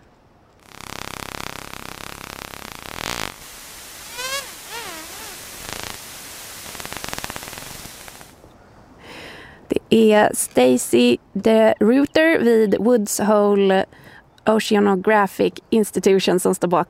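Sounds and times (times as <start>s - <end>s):
porpoise echolocation clicks speeding up during prey capture: 0.6s - 8.4s
speech: 9.9s - 16.8s.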